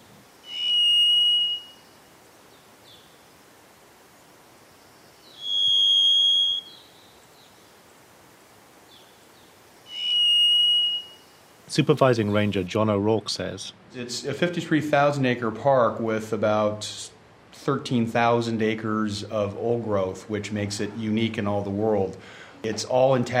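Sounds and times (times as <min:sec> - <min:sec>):
varied thrush singing long buzzy whistled notes: 0:00.0 - 0:03.4, 0:04.6 - 0:07.7, 0:08.9 - 0:12.6
steady forest hiss: 0:00.0 - 0:15.2
speech: 0:11.7 - 0:23.3.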